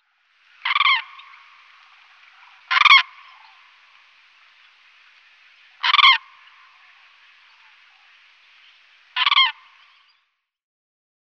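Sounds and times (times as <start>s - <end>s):
quiet hiss: 0.0s - 10.4s
Common crane bugling with harsh rattling bursts: 0.6s - 8.5s.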